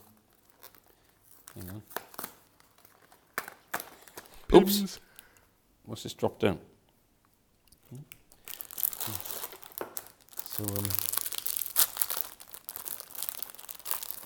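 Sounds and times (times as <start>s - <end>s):
speech: 1.6s - 2.0s, 4.6s - 5.0s, 5.9s - 6.7s, 7.9s - 8.2s, 9.0s - 9.3s, 10.6s - 11.1s
brief vocal sounds: 4.4s - 5.0s
plastic biscuit packet crinkling and tearing open: 8.4s - 14.2s.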